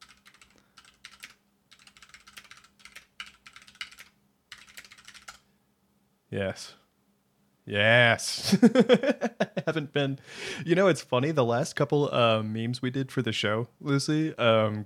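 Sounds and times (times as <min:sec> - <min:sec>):
typing on a computer keyboard: 0:00.0 - 0:05.4
speech: 0:06.3 - 0:06.8, 0:07.7 - 0:14.8
laughter: 0:08.4 - 0:10.2.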